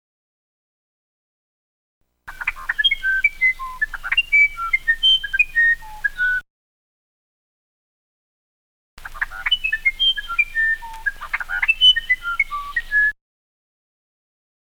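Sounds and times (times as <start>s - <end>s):
wren warbling song: 2.3s - 6.4s, 9.0s - 13.2s.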